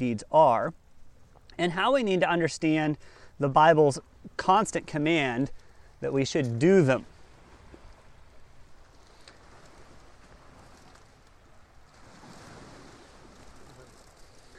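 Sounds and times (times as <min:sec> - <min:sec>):
speech: 0:00.0 - 0:00.8, 0:01.6 - 0:07.1
ocean surf roaring and washing: 0:01.6 - 0:14.5
wind buffeting the microphone: 0:07.0 - 0:14.5.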